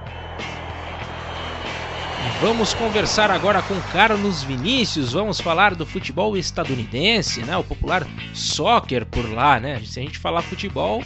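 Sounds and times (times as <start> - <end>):
airplane engine drone: 0.0 - 5.6
speech: 2.2 - 11.0.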